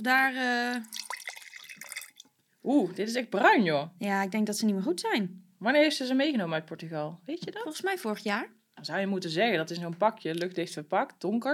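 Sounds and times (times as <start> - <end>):
speech: 0.0 - 1.0, 2.6 - 11.5
drink pouring from a carton into a glass: 0.8 - 2.4.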